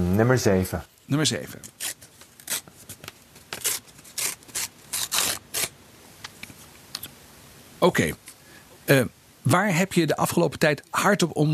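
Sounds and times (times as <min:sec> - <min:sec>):
speech: 0:00.2 - 0:02.0, 0:07.8 - 0:08.3, 0:08.9 - 0:11.5
paper envelope being picked up and opened: 0:01.6 - 0:05.8.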